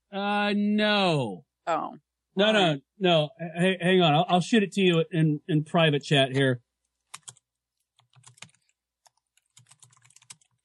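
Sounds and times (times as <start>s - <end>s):
speech: 0.2s - 6.6s
computer keyboard keys clicking: 7.0s - 10.6s.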